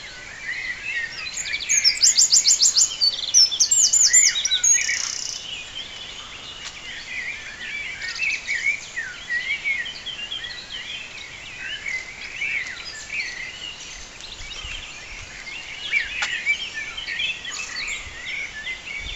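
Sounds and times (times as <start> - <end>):
several birds chirping and warbling: 0.0 - 19.1.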